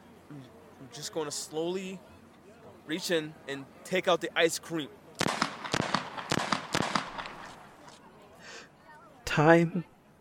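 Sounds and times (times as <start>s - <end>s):
speech: 0.9s - 2.1s, 2.9s - 5.0s, 9.4s - 9.9s
gunshots from a police officer's gun: 5.2s - 8.0s.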